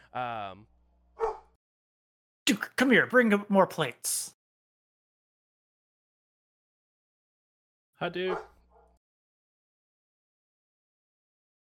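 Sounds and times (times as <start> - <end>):
speech: 0.1 - 0.7, 2.5 - 4.4, 8.0 - 8.5
dog barking: 1.2 - 1.6, 8.3 - 9.0.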